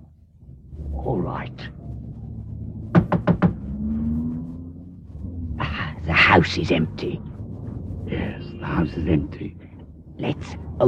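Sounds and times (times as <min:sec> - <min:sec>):
low steady hum of noise: 0:00.0 - 0:10.8
speech: 0:01.2 - 0:01.8, 0:06.4 - 0:07.4, 0:08.1 - 0:09.6, 0:10.2 - 0:10.8
knocking on a wooden door: 0:02.9 - 0:03.6.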